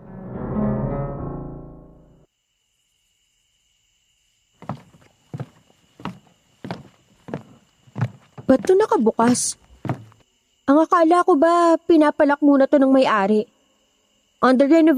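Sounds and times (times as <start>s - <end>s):
footsteps of a person walking down from the second floor of a guest lodging: 4.6s - 10.2s
speech: 8.5s - 9.6s, 10.7s - 13.5s, 14.4s - 14.9s.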